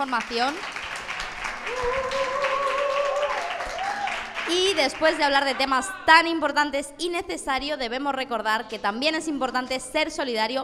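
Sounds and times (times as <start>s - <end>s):
speech: 0.0s - 0.8s, 1.7s - 2.5s, 4.5s - 10.6s
audience applause sending off a guest: 0.0s - 5.8s.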